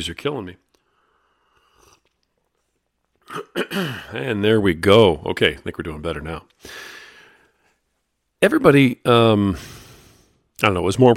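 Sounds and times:
speech: 0.0 - 0.7, 3.4 - 7.0, 8.4 - 9.8, 10.6 - 11.1
sipping a drink: 0.7 - 3.3.

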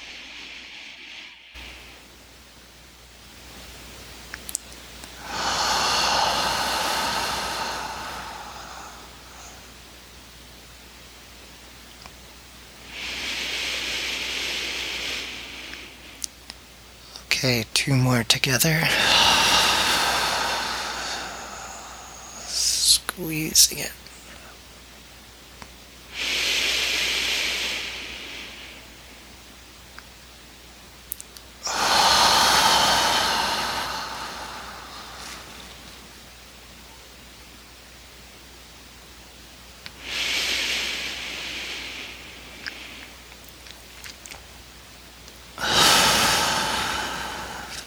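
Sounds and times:
slow deep breathing during a controlled breathing exercise: 0.0 - 2.0, 5.2 - 9.8, 12.9 - 16.3, 18.8 - 22.9, 26.1 - 29.1, 31.6 - 36.2, 39.9 - 43.2, 45.6 - 47.8
speech: 17.4 - 19.4, 23.2 - 24.0.

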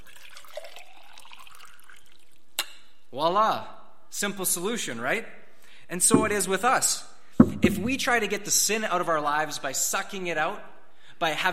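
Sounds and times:
water poured to fill a container: 0.0 - 2.5
speech: 3.1 - 11.5.

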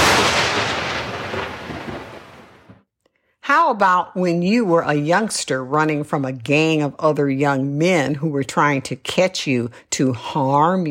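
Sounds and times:
thunderclap from a lightning strike: 0.0 - 2.9
speech: 3.5 - 10.8.

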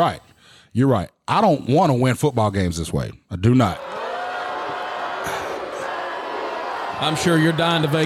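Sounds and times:
speech: 0.0 - 4.0, 7.0 - 8.0
large crowd booing loudly: 3.8 - 8.0.

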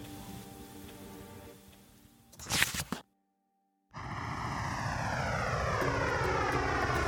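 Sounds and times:
airplane engine droning in flight: 4.0 - 7.0
loud rush: 4.0 - 7.0.

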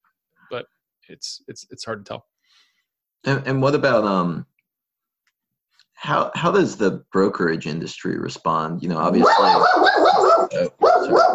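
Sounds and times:
speech: 0.5 - 4.5, 6.0 - 11.3
dog barking: 9.2 - 11.3.

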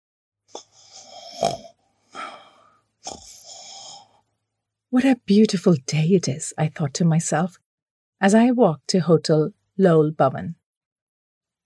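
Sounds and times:
person snoring while dozing during a geography lesson: 0.5 - 4.3
speech: 4.9 - 7.6, 8.2 - 10.6.

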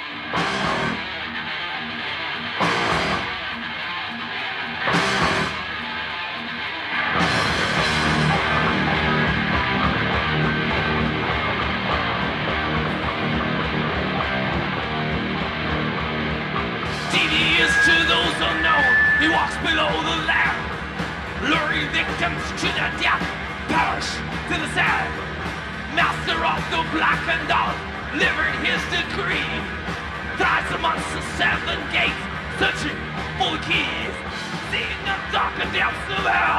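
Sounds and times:
lo-fi bootleg recording of live thrash metal concert: 0.0 - 36.5.

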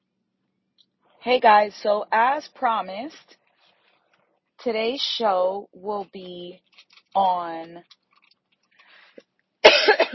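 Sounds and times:
speech: 1.2 - 3.4, 4.6 - 8.0
person coughing from tickle in throat: 9.6 - 10.1.

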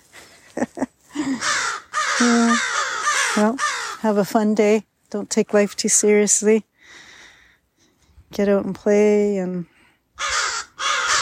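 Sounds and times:
crow cawing outdoors: 1.2 - 4.0, 10.2 - 11.2
speech: 2.2 - 2.7, 3.4 - 7.1, 8.3 - 10.4.

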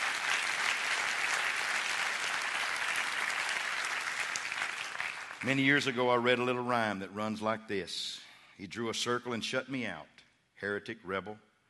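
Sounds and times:
church audience clapping and applauding: 0.0 - 6.0
speech: 5.4 - 11.5.

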